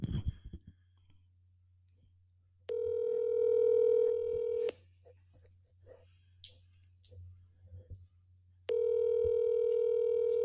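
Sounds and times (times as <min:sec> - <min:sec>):
electronic ringback tones through a phone earpiece: 0:02.7 - 0:04.7, 0:08.7 - 0:10.4.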